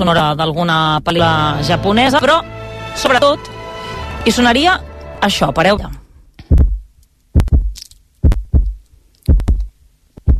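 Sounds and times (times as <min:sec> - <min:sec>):
speech: 0:00.0 - 0:03.6, 0:04.2 - 0:06.0
booming heartbeat picked up by a microphone: 0:05.8 - 0:10.3.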